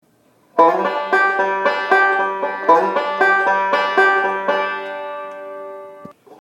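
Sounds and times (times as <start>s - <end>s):
musical lick variation with two-five slide: 0.6s - 6.2s.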